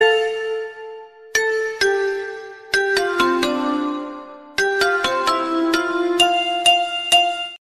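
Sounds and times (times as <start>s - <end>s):
xylophone: 0.0s - 7.5s.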